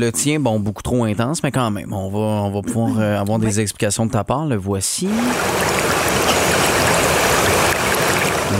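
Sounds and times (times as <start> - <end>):
speech: 0.0 - 6.7
flowing water: 5.0 - 8.5.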